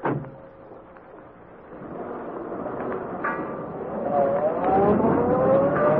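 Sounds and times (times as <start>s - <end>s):
car engine starting and driving off beyond a rooming house: 1.4s - 5.9s.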